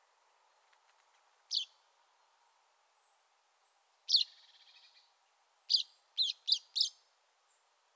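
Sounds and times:
common chaffinch Fringilla coelebs calls: 1.5 - 1.8, 4.1 - 5.0, 5.7 - 7.0.

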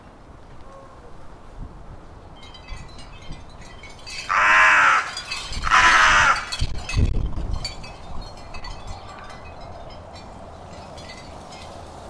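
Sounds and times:
carrion crow Corvus corone cawing: 4.3 - 6.5.

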